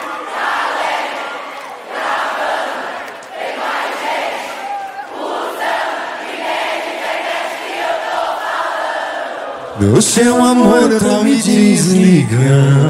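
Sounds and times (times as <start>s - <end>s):
large crowd shouting loudly in unison: 0.0s - 12.4s
speech: 9.8s - 12.8s.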